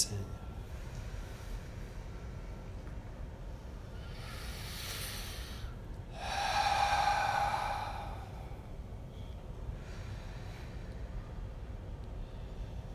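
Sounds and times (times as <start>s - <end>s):
deep breathing in through the nose and out through the mouth during guided meditation: 0.4s - 12.9s.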